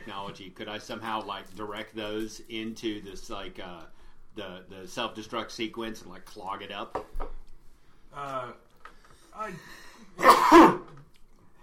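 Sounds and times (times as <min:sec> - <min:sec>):
speech: 0:00.0 - 0:07.4, 0:08.2 - 0:08.6, 0:09.4 - 0:11.0
person performing an exaggerated sneeze: 0:10.2 - 0:11.0.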